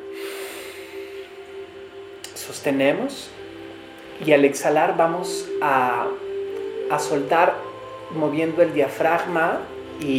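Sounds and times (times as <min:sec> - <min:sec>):
deep inhalation close to the microphone: 0:00.1 - 0:01.4
speech: 0:02.4 - 0:03.4, 0:04.2 - 0:06.2, 0:06.9 - 0:10.1.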